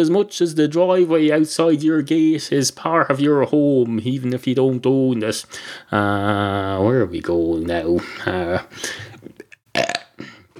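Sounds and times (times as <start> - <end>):
speech: 0.0 - 9.9
person belching: 9.7 - 10.5.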